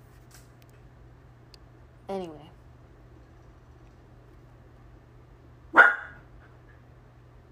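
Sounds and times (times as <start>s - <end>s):
low hum: 0.0s - 7.5s
dog barking: 5.7s - 6.2s.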